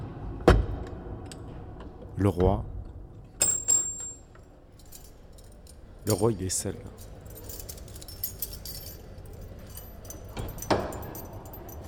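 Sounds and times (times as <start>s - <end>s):
speech: 2.2s - 2.7s, 6.0s - 7.1s
keys jangling: 3.4s - 11.8s.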